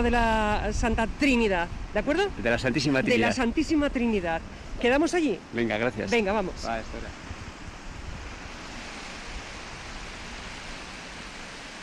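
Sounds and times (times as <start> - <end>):
speech: 0.0 - 7.2
river water flowing: 0.0 - 11.8.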